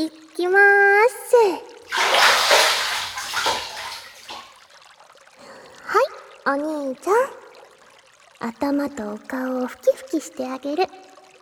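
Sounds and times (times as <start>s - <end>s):
speech: 0.0s - 2.8s, 6.5s - 7.4s, 8.4s - 11.0s
warm water poured over a head at bath time: 1.9s - 5.4s.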